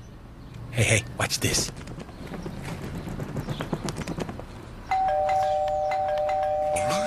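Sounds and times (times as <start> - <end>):
speech: 0.8 - 2.0
clip-clopping hoofbeats: 1.7 - 4.7
doorbell two-note chime: 4.9 - 7.0.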